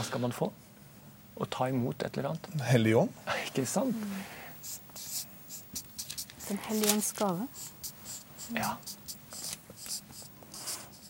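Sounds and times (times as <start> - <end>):
speech: 0.0 - 0.7, 1.4 - 4.8, 6.5 - 7.8, 8.5 - 9.0
pen strokes of handwriting on a surface: 4.6 - 11.0.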